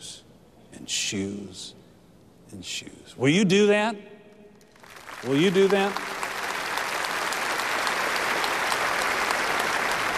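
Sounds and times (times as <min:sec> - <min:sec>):
speech: 0:00.9 - 0:01.8, 0:02.5 - 0:04.2, 0:05.2 - 0:06.1
large audience applauding: 0:04.7 - 0:10.1.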